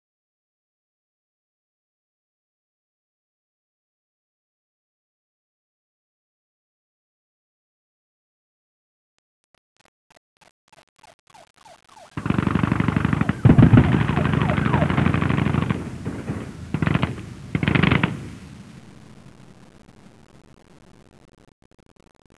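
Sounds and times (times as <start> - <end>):
bazooka ambience: 11.0 - 19.6.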